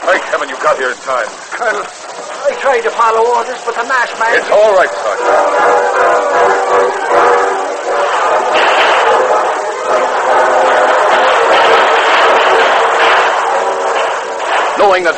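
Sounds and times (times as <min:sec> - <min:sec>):
speech: 0:00.0 - 0:07.4, 0:14.8 - 0:15.1
heavy gunfire in battle: 0:04.3 - 0:15.1.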